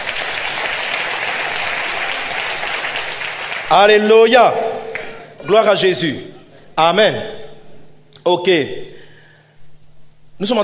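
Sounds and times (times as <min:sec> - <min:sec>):
crowd applauding and cheering: 0:00.0 - 0:05.3
speech: 0:03.7 - 0:04.6, 0:05.4 - 0:07.4, 0:08.2 - 0:08.9, 0:10.4 - 0:10.6.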